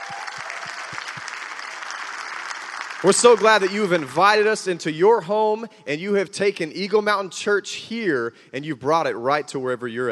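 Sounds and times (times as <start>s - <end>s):
audience applause at a church service: 0.0s - 4.4s
speech: 3.0s - 10.0s.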